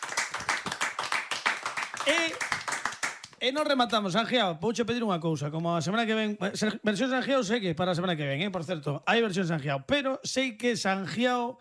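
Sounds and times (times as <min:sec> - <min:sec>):
audience applauding: 0:00.0 - 0:03.4
speech: 0:02.0 - 0:02.6, 0:03.4 - 0:11.5.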